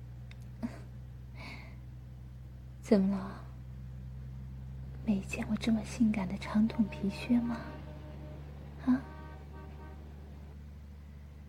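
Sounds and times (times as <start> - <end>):
low engine rumble inside a crowded bus: 0.0 - 11.4
speech: 2.9 - 3.4, 5.1 - 7.8, 8.8 - 9.1
horn toot: 6.4 - 10.6.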